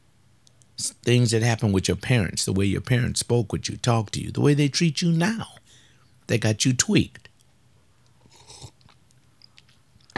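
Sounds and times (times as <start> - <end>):
speech: 1.0 - 5.6, 6.3 - 7.3
slurping hot coffee: 8.2 - 9.0.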